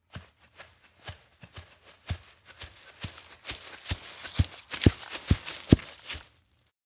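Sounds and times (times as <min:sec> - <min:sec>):
footsteps approaching outdoors in a wheatfield: 0:00.0 - 0:06.7.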